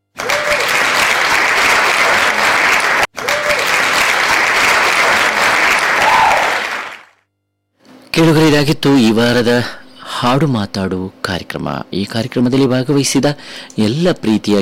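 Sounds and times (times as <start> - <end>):
audience applause: 0.1 - 7.1
speech: 8.2 - 14.5.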